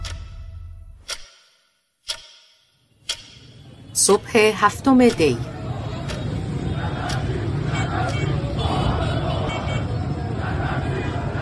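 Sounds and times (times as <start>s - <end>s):
low traffic rumble: 3.3s - 11.4s
many overlapping voices at a shopping arcade street: 3.6s - 11.4s
speech: 4.0s - 5.6s.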